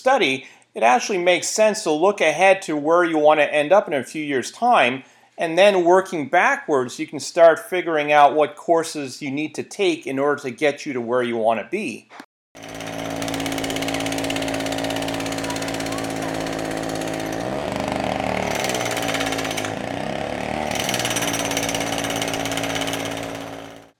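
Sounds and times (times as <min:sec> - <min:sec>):
speech: 0:00.0 - 0:12.8
jackhammer pounding with a mechanical roar: 0:12.6 - 0:23.9.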